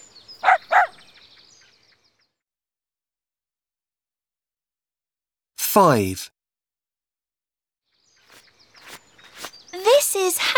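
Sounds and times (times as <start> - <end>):
black and white pet dog barking: 0.4 - 1.0
speech: 5.8 - 6.4, 9.8 - 10.5.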